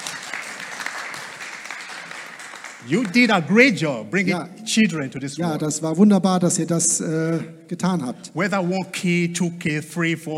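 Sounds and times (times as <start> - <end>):
crowd applause at a gathering: 0.0 - 3.6
speech: 2.8 - 10.3.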